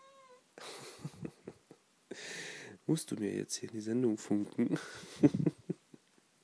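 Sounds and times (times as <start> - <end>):
hungry cat meowing in complaint: 0.0 - 0.4
speech: 2.9 - 5.5.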